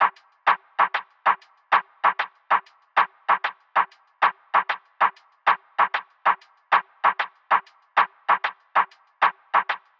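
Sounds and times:
hip hop percussion loop at 96 BPM: 0.0s - 9.9s.

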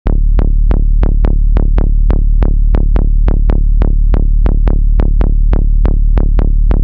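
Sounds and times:
bass loop in D: 0.0s - 6.8s.

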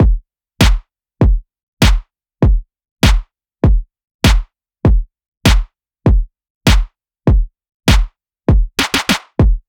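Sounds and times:
phonk EDM drum beat at 99 bpm: 0.0s - 9.6s.

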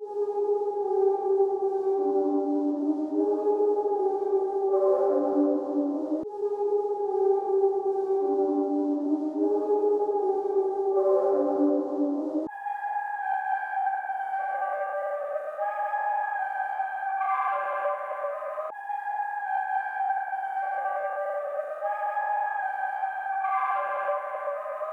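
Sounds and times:
77 BPM ghostly synth pad in C minor: 0.0s - 24.9s.

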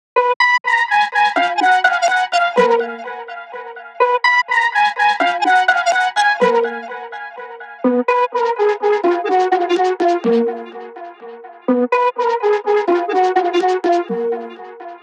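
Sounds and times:
125 BPM flute melody loop in D sharp minor: 0.2s - 15.0s.

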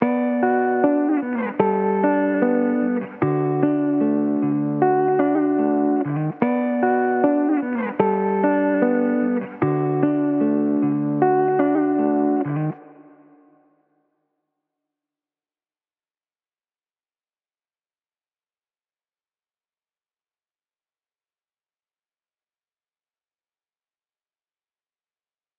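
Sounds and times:
wet electric guitar at 75 BPM in B minor: 0.0s - 13.5s.

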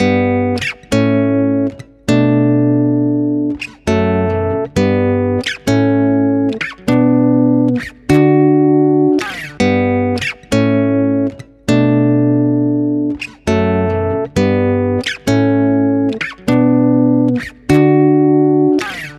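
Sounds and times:
guitar playing in F sharp major: 0.0s - 19.1s.

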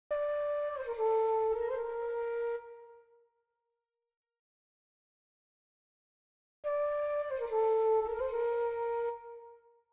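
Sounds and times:
flute in G minor: 0.1s - 3.6s, 6.6s - 9.9s.

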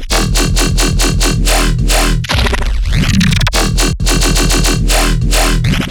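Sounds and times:
riddim bass loop in D sharp: 0.1s - 2.4s, 3.4s - 5.8s.

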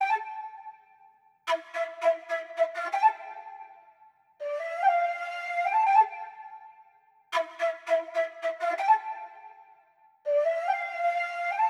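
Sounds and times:
flute in A minor: 0.0s - 11.6s.

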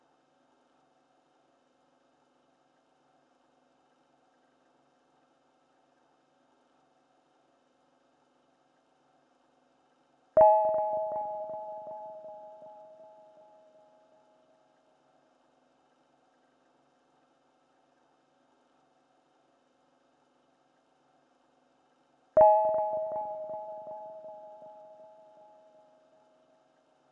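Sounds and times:
ambient G sharp minor pluck melody loop: 10.4s - 14.3s, 22.4s - 26.4s.

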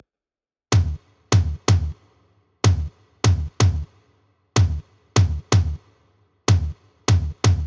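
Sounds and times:
bass house EDM tom drums: 0.7s - 3.9s, 4.6s - 5.9s, 6.5s - 7.6s.

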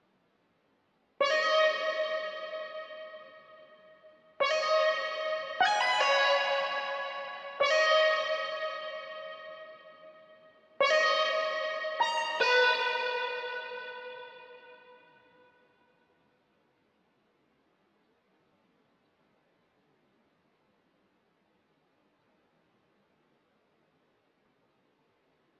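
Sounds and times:
150 BPM G sharp minor lead melody loop: 1.2s - 2.9s, 4.4s - 9.3s, 10.8s - 13.9s.

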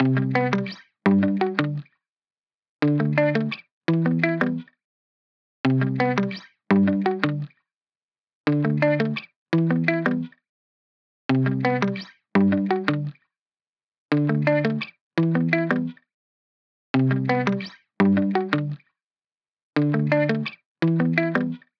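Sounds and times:
main guitar in G major: 0.0s - 1.8s, 2.8s - 4.6s, 5.7s - 7.5s, 8.5s - 10.3s, 11.4s - 13.1s, 14.1s - 15.9s, 17.0s - 18.8s, 19.8s - 21.6s.

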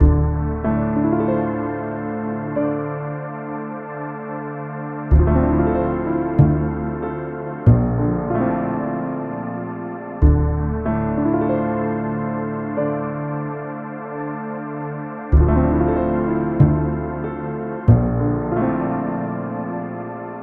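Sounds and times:
lo-fi hip hop music in D minor: 0.0s - 20.4s.

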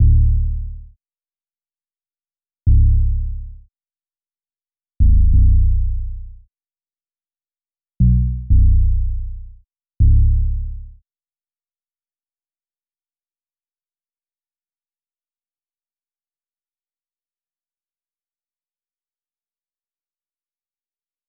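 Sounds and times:
bass loop in F sharp minor at 90 BPM: 0.0s - 0.8s, 2.7s - 3.5s, 5.0s - 6.3s, 8.0s - 10.9s.

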